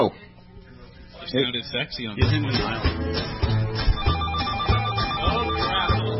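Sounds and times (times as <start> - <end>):
speech: 0.0 - 0.3, 1.3 - 3.4
telephone ringing sound effect: 4.0 - 6.1.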